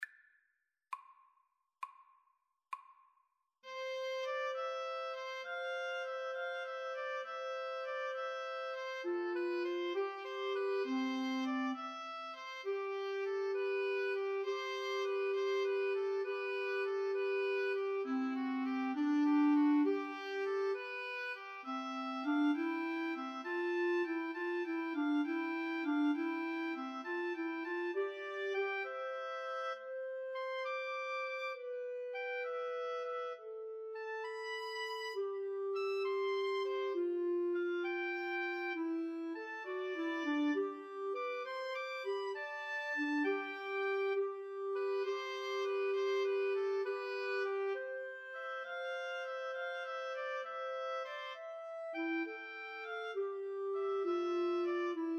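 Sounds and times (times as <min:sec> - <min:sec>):
clarinet in a pastoral piece: 0:03.6 - 0:55.1
flute in a pastoral piece: 0:03.7 - 0:55.1
oboe in a pastoral piece: 0:03.7 - 0:55.1.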